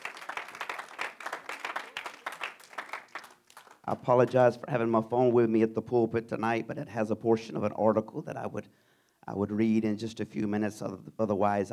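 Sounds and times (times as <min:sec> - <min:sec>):
church congregation clapping hands in praise: 0:00.0 - 0:04.5
speech: 0:03.9 - 0:11.7.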